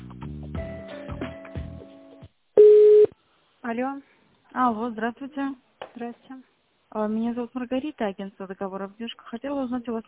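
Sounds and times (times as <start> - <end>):
pulsing telephone line tones during call transfer: 2.6 - 3.1
speech: 3.7 - 10.0.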